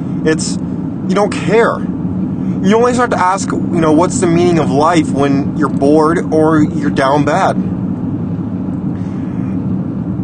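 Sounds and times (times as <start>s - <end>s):
road traffic rumble heard from the driver's seat of a car: 0.0s - 10.2s
speech: 0.2s - 1.9s, 2.5s - 7.7s.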